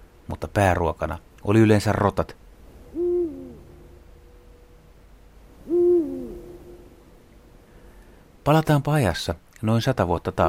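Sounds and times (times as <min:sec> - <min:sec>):
speech: 0:00.3 - 0:02.4, 0:08.5 - 0:10.4
Eurasian eagle-owl hooting: 0:02.8 - 0:04.9, 0:05.6 - 0:07.2.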